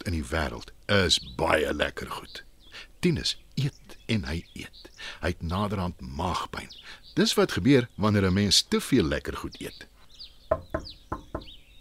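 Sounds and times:
faint bird chirps: 0.0 - 11.7
speech: 0.1 - 9.9
knocking on a house door: 10.5 - 11.6.

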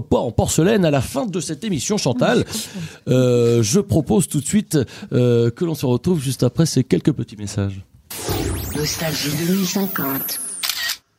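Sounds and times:
speech: 0.0 - 7.9, 8.8 - 10.5
laughter: 2.2 - 3.0
faint high electronic whine: 8.1 - 10.8
smartphone camera shutter clicks: 10.1 - 11.1.

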